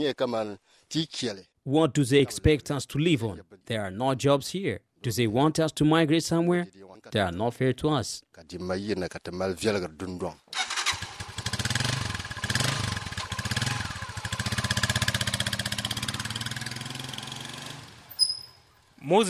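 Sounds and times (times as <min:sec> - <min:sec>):
speech: 0:00.0 - 0:10.7, 0:19.0 - 0:19.2
motorbike engine running: 0:11.0 - 0:17.4.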